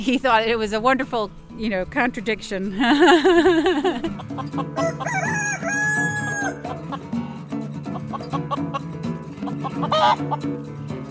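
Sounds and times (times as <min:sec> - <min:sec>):
speech: 0:00.0 - 0:05.8, 0:10.0 - 0:10.8
steady musical backing: 0:00.0 - 0:11.0
laughter: 0:02.7 - 0:05.2
backyard chickens clucking: 0:03.7 - 0:10.6
rooster crowing: 0:04.8 - 0:06.8.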